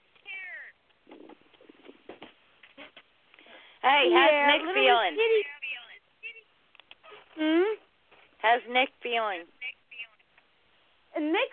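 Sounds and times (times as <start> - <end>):
cat rustling and shuffling as it runs away: 1.0 - 3.0
speech: 3.9 - 5.5, 7.4 - 7.7, 8.4 - 9.6, 11.2 - 11.5.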